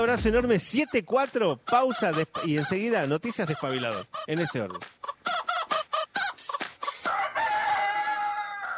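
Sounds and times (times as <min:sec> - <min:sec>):
speech: 0:00.0 - 0:05.0
rooster clucking: 0:00.1 - 0:08.7
rooster crowing: 0:07.1 - 0:08.7.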